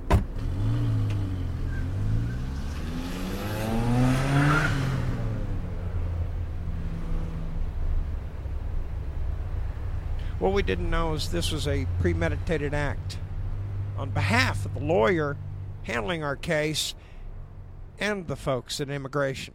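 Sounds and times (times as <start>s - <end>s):
car engine revving as the car swings around and accelerates away: 0.0s - 18.0s
steady road rumble: 0.0s - 19.5s
faint tire squeal: 1.2s - 5.0s
speech: 10.4s - 13.2s, 14.0s - 17.1s, 18.0s - 19.5s.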